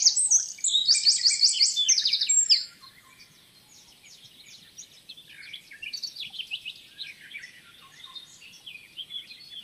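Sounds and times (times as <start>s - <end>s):
Eurasian wren Troglodytes troglodytes singing a rattling trill: 0.0s - 9.6s.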